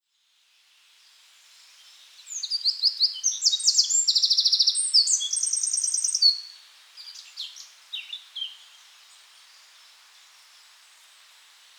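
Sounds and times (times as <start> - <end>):
Eurasian wren song (Troglodytes troglodytes): 2.3 - 8.7.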